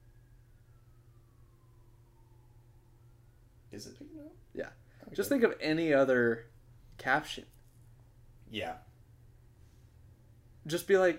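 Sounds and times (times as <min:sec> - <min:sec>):
ambulance siren passing outside: 0:00.0 - 0:04.5
speech: 0:03.7 - 0:07.6, 0:08.5 - 0:08.9, 0:10.6 - 0:11.1.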